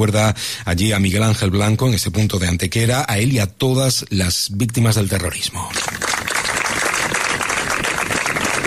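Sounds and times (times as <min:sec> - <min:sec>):
speech: 0:00.0 - 0:06.1
sizable crowd applauding at a memorial tribute in gardens: 0:05.7 - 0:08.6.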